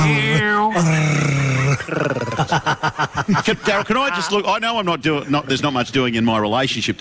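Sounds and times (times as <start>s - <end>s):
man's voice imitating a dog growling: 0.0s - 2.5s
laughter: 0.2s - 4.8s
speech: 3.2s - 6.9s.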